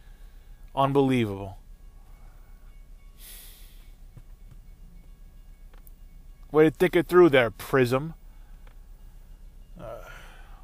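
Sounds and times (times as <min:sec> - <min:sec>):
train passing at a distance: 0:00.0 - 0:10.6
speech: 0:00.8 - 0:01.6, 0:06.5 - 0:08.2
hissing burst: 0:03.2 - 0:03.8.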